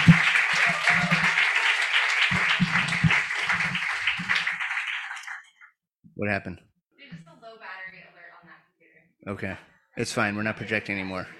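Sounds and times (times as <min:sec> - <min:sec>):
crowd applauding for a runner-up: 0:00.0 - 0:05.7
speech: 0:06.2 - 0:06.7, 0:09.2 - 0:11.3.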